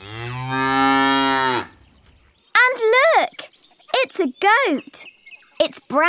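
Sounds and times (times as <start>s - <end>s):
black-and-white cow mooing: 0.0s - 1.8s
speech: 4.2s - 6.0s.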